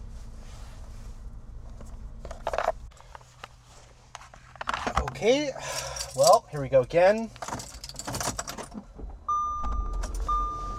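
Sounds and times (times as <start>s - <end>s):
speech: 5.2s - 7.7s
keys jangling and clattering: 5.6s - 6.5s, 7.2s - 8.7s
high clear dashboard chime beeping: 9.3s - 10.7s.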